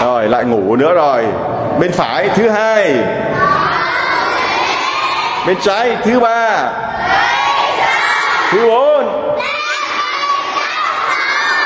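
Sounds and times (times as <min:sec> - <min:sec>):
speech: 0:00.2 - 0:03.7, 0:05.4 - 0:07.2, 0:08.5 - 0:09.2
large group of children shouting loudly together: 0:03.2 - 0:05.8, 0:06.9 - 0:11.6.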